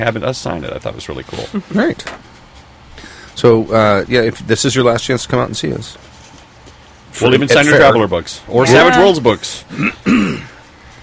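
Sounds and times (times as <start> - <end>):
speech: 0.0 - 2.2, 3.4 - 6.1, 7.1 - 10.5
person clearing throat with a slight cough: 9.7 - 10.6.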